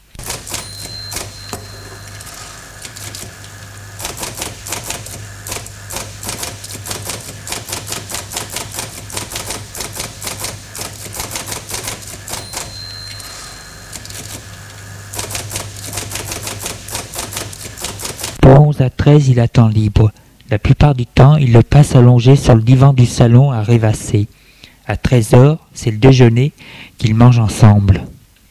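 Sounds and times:
typewriter keystrokes: 0.1 - 1.6, 2.2 - 12.8, 13.9 - 14.5, 15.1 - 18.4
speech: 19.1 - 28.1.

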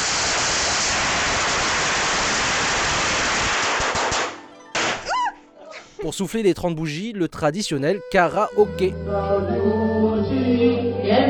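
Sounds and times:
long string of firecrackers crackling: 0.0 - 5.1
speech: 6.0 - 11.2.

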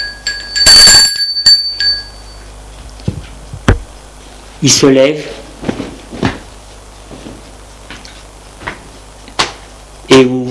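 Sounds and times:
doorbell ringing with a bright metallic bell tone: 0.0 - 2.5
speech: 4.6 - 5.4, 10.2 - 10.4.

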